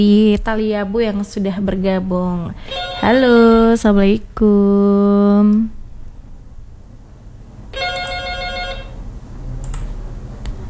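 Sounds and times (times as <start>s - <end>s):
speech: 0.0s - 5.8s
incoming call ringtone, bright multi-toned electronic ringing: 2.6s - 3.4s, 7.7s - 9.1s.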